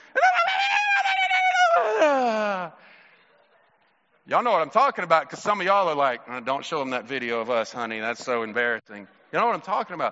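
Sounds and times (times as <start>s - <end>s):
person imitating the excited squeal of a cheering parent: 0.0s - 2.7s
speech: 4.3s - 10.0s.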